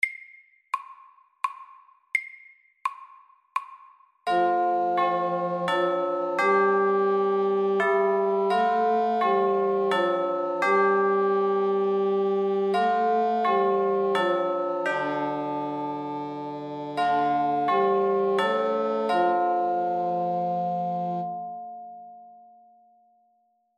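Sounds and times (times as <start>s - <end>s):
bell ringing: 4.3s - 21.8s.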